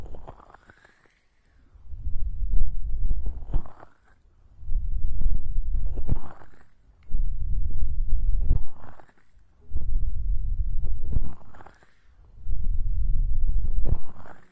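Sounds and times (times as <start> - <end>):
deep rubbing of an ear massage: 1.8 - 14.5.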